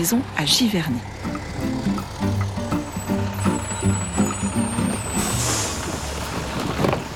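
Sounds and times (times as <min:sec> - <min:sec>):
speech: 0:00.0 - 0:01.3
large bus engine idling with faint high whine: 0:00.0 - 0:07.1
bus air-brake hiss: 0:05.2 - 0:06.4.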